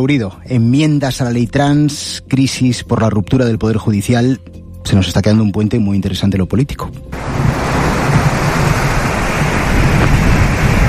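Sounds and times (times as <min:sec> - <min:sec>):
speech: 0:00.0 - 0:07.6
sea waves: 0:07.1 - 0:10.8.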